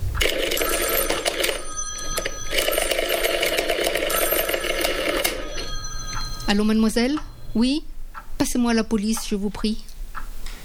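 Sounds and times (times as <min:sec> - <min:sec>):
telephone bell ringing in a rapid metallic trill: 0:00.2 - 0:07.6
speech: 0:06.5 - 0:09.9.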